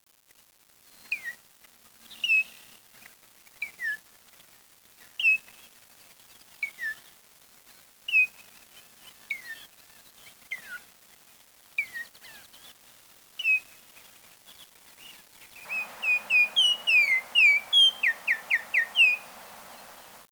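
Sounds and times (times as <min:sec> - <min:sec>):
light background hiss: 0:00.3 - 0:20.3
bird calling falling whistles: 0:15.7 - 0:20.3.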